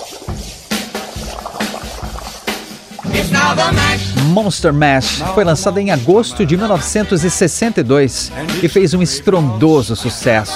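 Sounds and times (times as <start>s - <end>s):
air blown through a straw bubbling water in a glass: 0.0s - 4.2s
speech: 3.2s - 10.5s.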